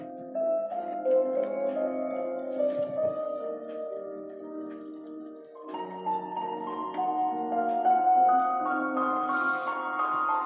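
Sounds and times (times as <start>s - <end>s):
slow piano chords with a soft melody: 0.0s - 10.4s.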